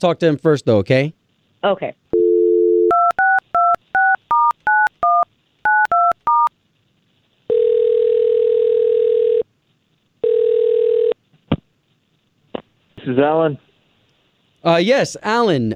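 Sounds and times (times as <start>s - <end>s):
speech: 0.0s - 2.0s, 13.0s - 13.7s, 14.6s - 15.7s
long buzzing phone ring tones: 2.2s - 4.2s, 7.5s - 9.4s, 10.2s - 11.2s
phone dial tone: 2.2s - 6.5s, 7.5s - 9.4s, 10.2s - 11.2s.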